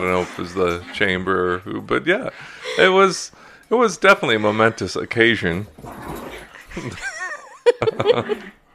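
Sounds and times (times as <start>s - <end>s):
dog growling while playing with toy: 0.0s - 1.6s, 4.2s - 7.1s
speech: 0.0s - 6.2s, 6.8s - 7.1s, 7.8s - 8.6s
laughter: 6.7s - 8.6s.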